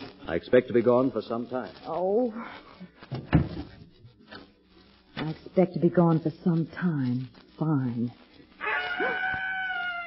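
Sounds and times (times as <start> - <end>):
speech: 0.3 - 3.0, 5.2 - 8.2
screech owl call: 8.6 - 10.0.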